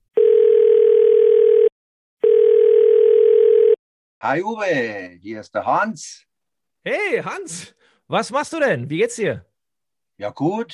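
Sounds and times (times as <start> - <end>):
telephone ringing with electronic tones for an incoming call: 0.2 - 3.8
speech: 4.2 - 9.5, 10.2 - 10.7.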